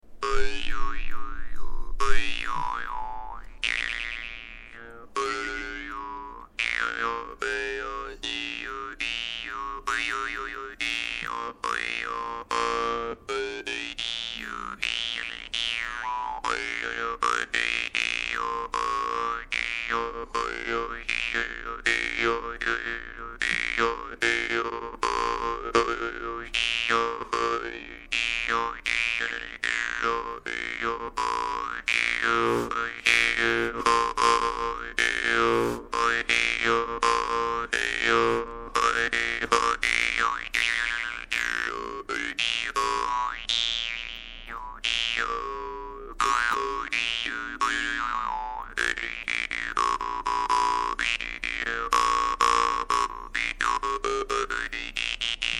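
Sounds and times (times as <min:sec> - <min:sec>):
big Khakass khomus jaw harp: 0:00.2 - 0:55.5.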